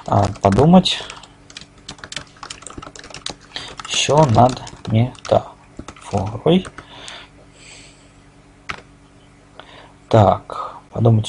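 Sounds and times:
keyboard keystrokes typing a text comment: 0.0 - 7.2
speech: 0.1 - 1.2, 4.0 - 5.5, 6.1 - 6.8, 10.1 - 11.2.

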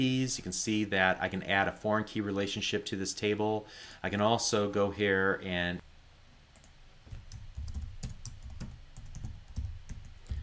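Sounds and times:
speech: 0.0 - 5.8
typing on a computer keyboard: 6.6 - 10.4.

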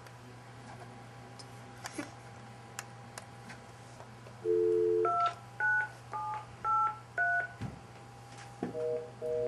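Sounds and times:
low steady hum: 0.0 - 9.4
telephone keypad dialing tones: 4.5 - 7.5.

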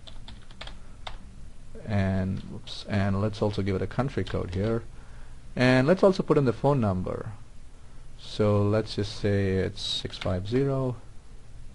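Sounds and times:
typing an address and zip code on a computer keyboard: 0.0 - 1.2, 4.2 - 4.8
low hum: 0.0 - 11.7
speech: 1.9 - 5.0, 5.6 - 7.4, 8.2 - 11.0.

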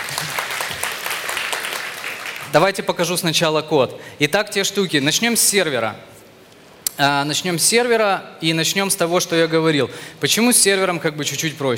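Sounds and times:
audience applause: 0.0 - 2.6
speech: 2.5 - 6.1, 7.0 - 11.7.

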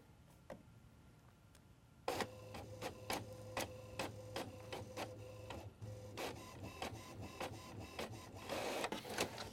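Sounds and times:
HP inkjet printer printing a page: 2.1 - 9.5.

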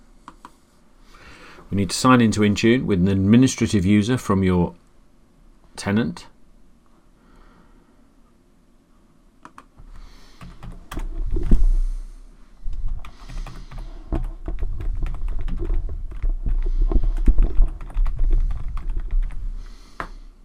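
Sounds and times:
speech: 1.7 - 4.8, 5.8 - 6.3
typing on an American computer keyboard: 9.4 - 9.7, 10.4 - 11.5, 12.9 - 19.4.

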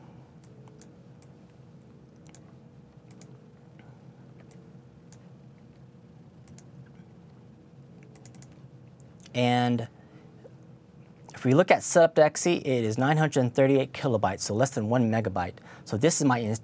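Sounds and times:
steady low hum: 0.0 - 16.6
computer mouse clicks: 0.4 - 1.3, 2.2 - 2.5, 3.1 - 3.4, 4.4 - 5.2, 6.4 - 6.7, 8.0 - 9.3
speech: 9.4 - 9.9, 11.4 - 16.6.

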